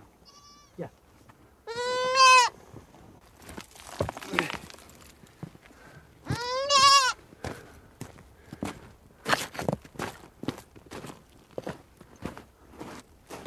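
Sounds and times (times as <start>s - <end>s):
goat bleating: 0.2s - 0.8s, 1.7s - 2.5s, 6.2s - 7.2s
speech: 0.8s - 1.0s
faint footsteps: 2.6s - 13.4s.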